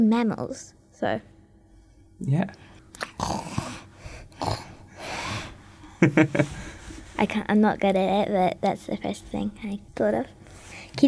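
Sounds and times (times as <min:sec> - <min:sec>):
speech: 0:00.0 - 0:01.3, 0:02.2 - 0:03.4, 0:06.0 - 0:10.4
person imitating snoring: 0:03.1 - 0:05.4.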